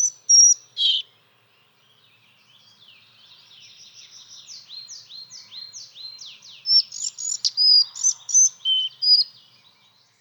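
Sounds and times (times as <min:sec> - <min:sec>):
collared flycatcher singing: 0:00.0 - 0:01.1, 0:05.8 - 0:09.5.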